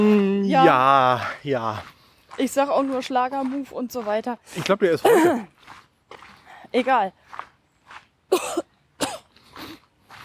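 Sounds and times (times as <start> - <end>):
speech: 0.0 - 5.8, 6.7 - 7.5
person clearing throat after inhaling a small piece of hard candy: 5.0 - 5.5
person coughing after inhaling a small piece of hard candy: 5.0 - 5.5, 8.3 - 9.3.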